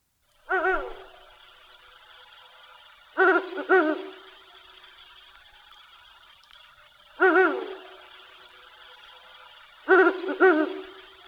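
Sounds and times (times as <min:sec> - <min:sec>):
Ural owl hooting: 0:00.5 - 0:01.4, 0:03.2 - 0:04.4, 0:07.2 - 0:08.5, 0:09.8 - 0:11.2.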